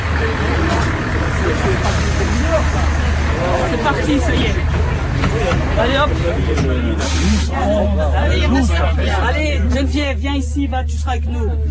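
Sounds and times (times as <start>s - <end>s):
bus engine idling with a deep rumble: 0.0s - 11.6s
speech: 3.9s - 11.6s.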